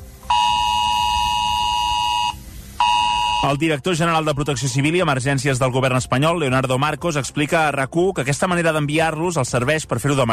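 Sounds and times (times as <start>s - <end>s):
emergency alert tone on an updated mobile phone: 0.2s - 5.1s
speech: 3.4s - 10.3s.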